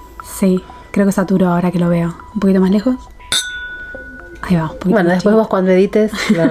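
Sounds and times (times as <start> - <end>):
speech: 0.4 - 3.2, 4.5 - 6.5
glasses clinking in a toast: 3.2 - 4.7.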